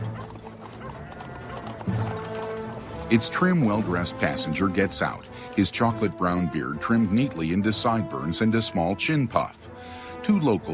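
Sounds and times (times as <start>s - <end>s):
horse snorting or whinnying: 0.0s - 5.6s
carriage wheels creaking and rattling: 0.0s - 7.8s
horse hooves clip-clopping as a carriage arrives: 0.0s - 8.6s
speech: 3.1s - 10.7s.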